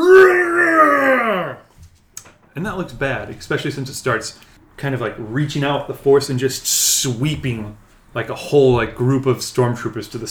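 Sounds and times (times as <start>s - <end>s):
voice imitating a demonic howling scream: 0.0s - 1.6s
speech: 2.6s - 10.2s.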